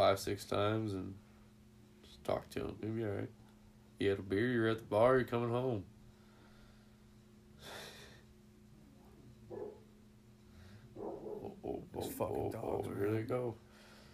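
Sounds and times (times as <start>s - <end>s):
low steady hum: 0.0s - 14.1s
speech: 0.1s - 1.3s, 2.2s - 3.4s, 4.0s - 5.9s, 12.0s - 13.6s
dogs barking and snarling: 9.5s - 9.9s, 10.8s - 11.9s.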